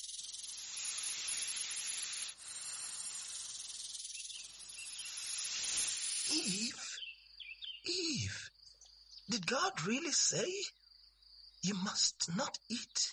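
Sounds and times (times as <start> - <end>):
snake hiss with faint throaty undertone: 0.0 - 7.0
speech: 9.3 - 10.8, 11.6 - 13.1.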